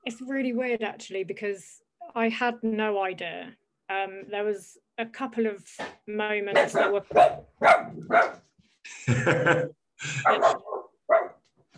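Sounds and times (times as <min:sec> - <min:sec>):
speech: 0:00.0 - 0:08.4, 0:09.0 - 0:10.7
guest dog barking and yipping in a home: 0:06.5 - 0:08.5, 0:10.2 - 0:11.5
laughter: 0:08.9 - 0:10.5.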